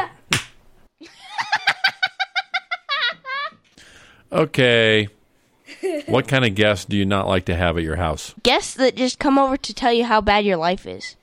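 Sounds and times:
sharp loud slap: 0.0 - 0.6
high-pitched rhythmic cackling laughter: 1.0 - 3.6
speech: 4.3 - 5.2, 5.8 - 11.2.

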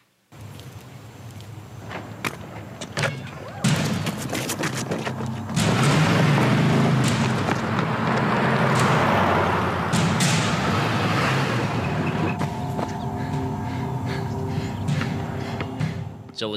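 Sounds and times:
sharp thumps and bangs: 1.9 - 16.4
truck rumbling: 3.7 - 16.3
speech: 16.4 - 16.5.

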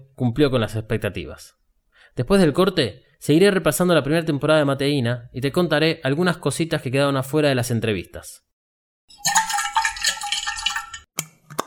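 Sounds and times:
speech: 0.2 - 1.6, 2.2 - 8.5, 9.1 - 9.4
heated water poured into a mate gourd: 9.1 - 11.1.

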